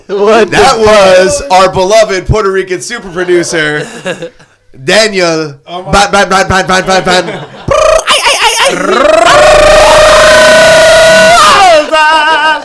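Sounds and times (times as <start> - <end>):
speech: 0.1 - 7.4
laughter: 3.0 - 4.6, 6.8 - 9.7
man imitating chicken squawks: 7.7 - 12.2.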